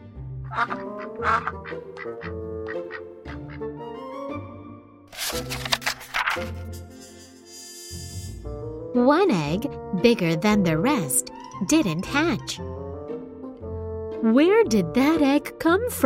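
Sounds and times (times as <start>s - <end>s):
speech: 0.5s - 3.0s, 9.0s - 12.8s, 14.2s - 16.0s
ducklings quacking: 0.5s - 3.6s.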